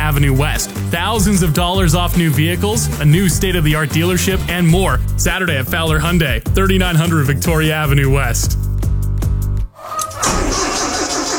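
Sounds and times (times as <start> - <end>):
speech: 0.1 - 8.6
tractor engine cranking slowly on a weak battery: 9.9 - 11.3.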